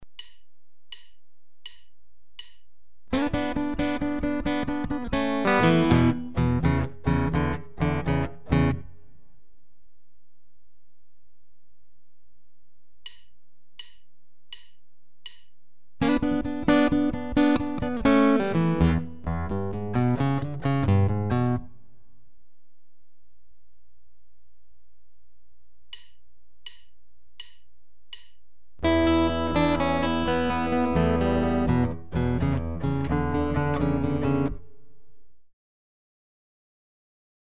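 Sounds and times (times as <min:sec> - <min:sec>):
guitar alternating between lead and bass: 0:03.1 - 0:09.0, 0:16.0 - 0:21.8, 0:28.8 - 0:34.8.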